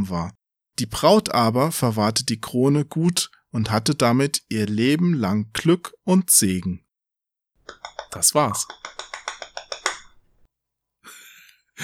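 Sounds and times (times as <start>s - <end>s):
speech: 0.0s - 6.8s, 7.8s - 9.1s
hand clapping: 7.6s - 10.5s.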